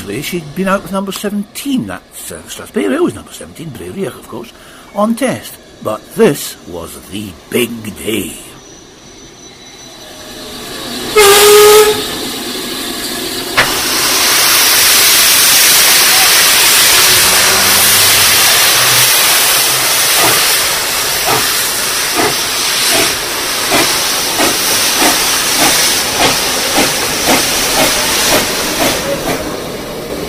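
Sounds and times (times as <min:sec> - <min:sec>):
speech: 0:00.0 - 0:08.5
steam hissing from a steam locomotive: 0:08.6 - 0:30.2
steam locomotive whistle: 0:10.0 - 0:12.2, 0:13.6 - 0:21.5.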